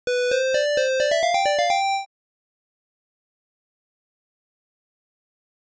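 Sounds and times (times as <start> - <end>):
game over jingle: 0.1 - 2.1.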